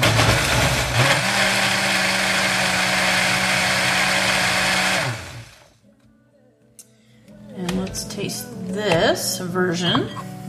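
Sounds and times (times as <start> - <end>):
blender mixing a sweet and spicy sauce for Korean short ribs: 0.0 - 5.8
speech: 9.4 - 10.2.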